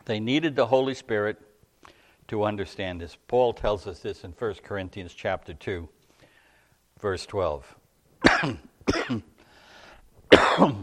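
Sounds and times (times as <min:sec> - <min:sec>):
speech: 0:00.0 - 0:01.5, 0:02.3 - 0:06.0, 0:07.0 - 0:09.3, 0:10.6 - 0:10.8
person clearing their throat with a rough rasp: 0:08.2 - 0:09.4, 0:10.3 - 0:10.8
person coughing: 0:08.2 - 0:09.4, 0:10.3 - 0:10.8.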